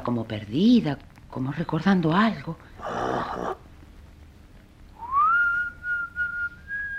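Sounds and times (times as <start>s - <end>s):
speech: 0.1s - 3.7s
person whistling softly: 5.0s - 6.9s.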